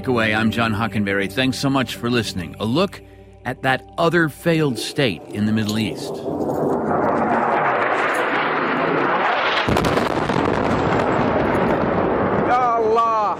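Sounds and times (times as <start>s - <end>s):
speech: 0.0s - 7.2s
sharp blast of an airstrike: 5.0s - 12.8s
airstrike explosions in Yemen: 5.1s - 12.9s.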